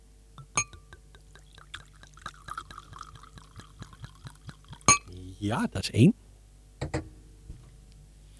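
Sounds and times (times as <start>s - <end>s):
drink pouring into a glass: 0.4s - 5.1s
glass clink: 0.4s - 5.1s
faint trickle with small drips and ticks: 0.4s - 5.2s
speech: 5.4s - 6.2s.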